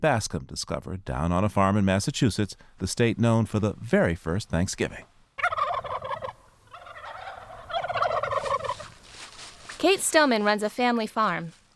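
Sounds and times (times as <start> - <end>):
speech: 0.0 - 5.1, 9.8 - 11.6
heritage turkeys gobbling on a family farm in Massachusetts: 5.4 - 9.0.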